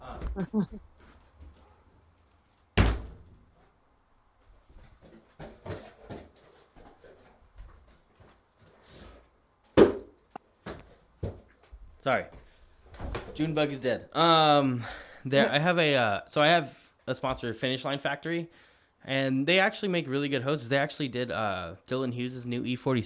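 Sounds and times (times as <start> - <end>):
shuffling: 0.0 - 2.7, 4.4 - 9.4
speech: 0.4 - 0.9, 12.0 - 12.4, 13.4 - 23.0
back door slamming shut: 2.8 - 3.3.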